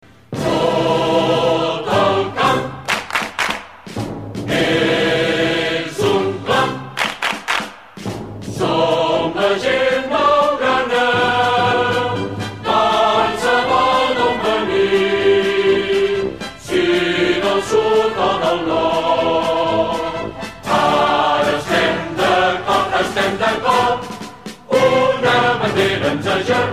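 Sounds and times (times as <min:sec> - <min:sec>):
regional anthem music: 0:00.3 - 0:26.7.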